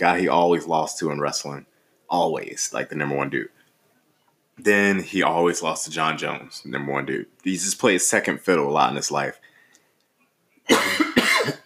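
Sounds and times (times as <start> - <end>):
speech: 0.0 - 3.6, 4.6 - 9.5, 10.7 - 11.1
harsh rough coughs: 10.7 - 11.6.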